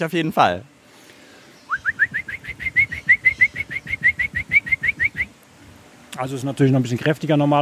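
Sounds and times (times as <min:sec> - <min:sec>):
speech: 0:00.0 - 0:00.7, 0:06.2 - 0:07.5
person imitating a black woodpecker flight call: 0:01.7 - 0:05.3.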